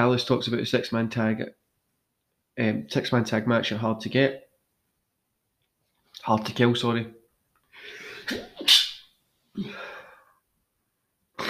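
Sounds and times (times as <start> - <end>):
speech: 0.0 - 1.6, 2.6 - 4.4, 6.2 - 7.2, 7.8 - 8.8, 9.6 - 9.8
forceful sneeze: 8.0 - 9.0.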